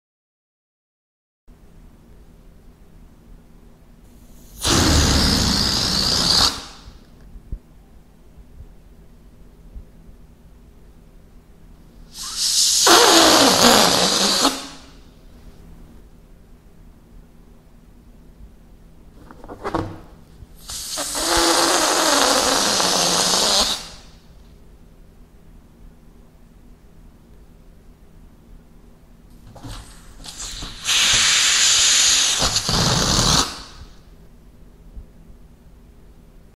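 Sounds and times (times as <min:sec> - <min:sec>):
air deflating: 0:04.2 - 0:07.0, 0:12.1 - 0:15.0, 0:20.6 - 0:24.2, 0:29.6 - 0:34.0.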